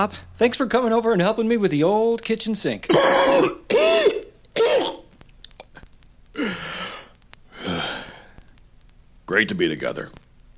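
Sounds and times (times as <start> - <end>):
speech: 0.0 - 5.0, 6.4 - 6.7, 9.3 - 10.5
smoker's harsh phlegmy coughing fit: 2.9 - 5.1.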